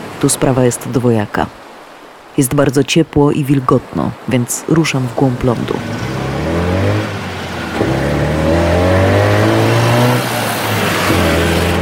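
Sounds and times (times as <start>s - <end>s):
speech: 0.2s - 1.6s, 2.4s - 6.1s
three-wheeled taxi engine revving: 5.8s - 11.8s.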